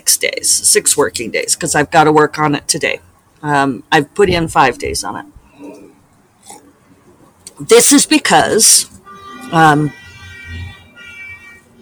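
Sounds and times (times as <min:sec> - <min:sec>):
speech: 0:00.1 - 0:05.8, 0:07.6 - 0:10.6
angry car horn honking: 0:09.0 - 0:11.8.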